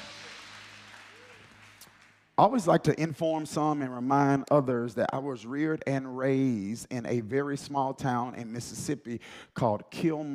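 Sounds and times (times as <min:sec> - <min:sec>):
audience clapping hands: 0:00.0 - 0:02.6
speech: 0:02.4 - 0:10.3.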